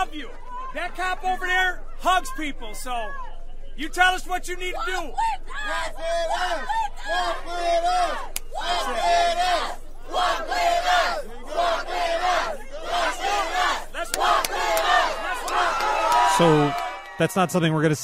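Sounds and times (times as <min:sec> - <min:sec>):
speech: 0:00.0 - 0:15.0, 0:16.4 - 0:18.0
large protest crowd chanting in unison: 0:04.8 - 0:16.8.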